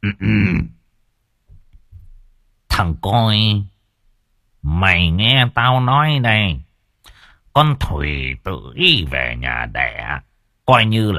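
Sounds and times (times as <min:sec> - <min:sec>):
narrator clearing throat as an old man: 0:00.0 - 0:00.8
speech: 0:00.0 - 0:00.8, 0:02.8 - 0:03.7, 0:04.6 - 0:06.6, 0:07.6 - 0:11.1.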